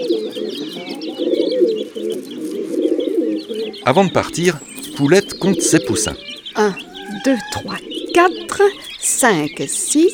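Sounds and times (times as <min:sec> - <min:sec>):
several pigeons cooing: 0:00.0 - 0:10.1
faint higher bird chirps: 0:03.6 - 0:10.1
speech: 0:03.9 - 0:10.1.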